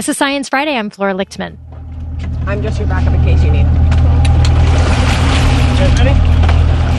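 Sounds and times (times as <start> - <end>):
speech: 0.0 - 1.8, 2.4 - 3.9, 5.8 - 6.3
loud low rumble of a boat engine off the coast of Miami: 0.0 - 6.9
water noise: 1.1 - 6.9
wind: 1.6 - 6.9.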